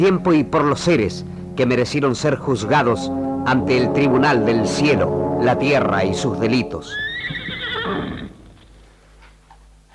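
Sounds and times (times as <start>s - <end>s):
speech: 0.0s - 7.4s
horse neighing: 6.9s - 8.6s.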